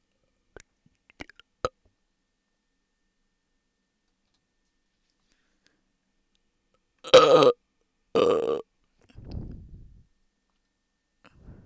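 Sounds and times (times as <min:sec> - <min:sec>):
loud drawn-out wet burps: 0:07.1 - 0:07.6, 0:08.2 - 0:08.6.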